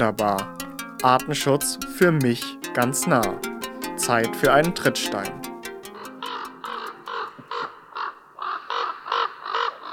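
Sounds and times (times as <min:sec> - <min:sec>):
speech: 0:00.0 - 0:05.5
common raven croaking harshly: 0:05.8 - 0:09.9.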